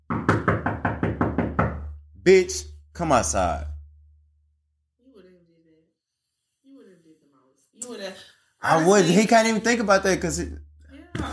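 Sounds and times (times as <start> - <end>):
loud pounding knocks on a door: 0.0 - 2.0
speech: 2.3 - 3.7, 8.6 - 11.3.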